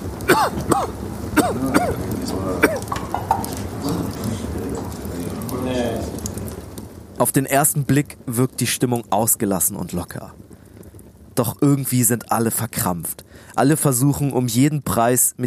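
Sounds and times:
man coughing and clearing his throat: 0.3 - 2.9
speech: 0.3 - 3.6, 7.2 - 10.5, 11.4 - 15.4
low murmur of voices and chatter: 1.3 - 6.5.

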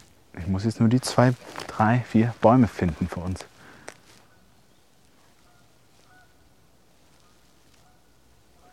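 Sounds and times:
soft steady hiss: 0.0 - 8.7
speech: 0.4 - 3.5
distant duck or goose honking: 5.4 - 6.4, 7.2 - 8.7.

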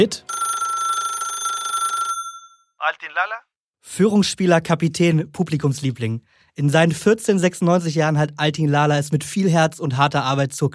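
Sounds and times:
speech: 0.0 - 0.3, 2.8 - 10.7
telephone ringing with steady trill: 0.1 - 3.0.

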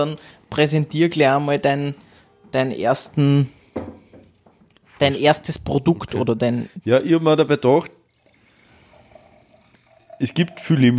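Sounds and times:
speech: 0.0 - 4.0, 5.0 - 8.0, 10.2 - 10.9
drink pouring into a glass with faint ringing tones: 7.8 - 10.9.

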